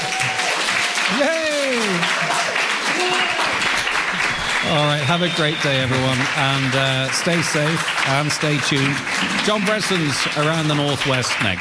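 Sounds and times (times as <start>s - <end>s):
rising-and-falling vocal cheer: 0.0s - 3.6s
dense steady clapping at a live show: 0.0s - 11.6s
speech: 1.1s - 2.3s, 4.7s - 11.6s.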